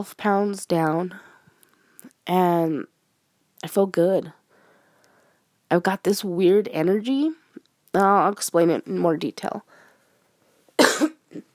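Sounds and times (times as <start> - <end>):
speech: 0.0 - 1.3, 2.3 - 2.9, 3.6 - 4.4, 5.7 - 9.8
sharp cough from a person with the sniffles: 10.8 - 11.4.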